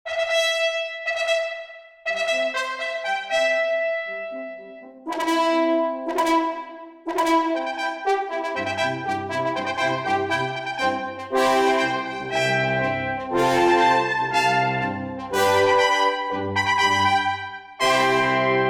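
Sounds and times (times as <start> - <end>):
elegant trumpet alarm tone: 0.1 - 18.6.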